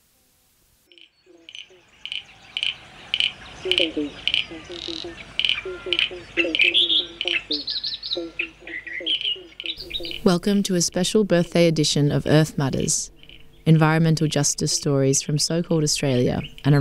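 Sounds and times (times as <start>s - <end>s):
frogs calling in short pulsed croaks: 0.8s - 16.7s
higher chirps and trills in an outdoor chorus: 0.9s - 10.6s, 12.8s - 15.3s
speech: 3.6s - 16.7s.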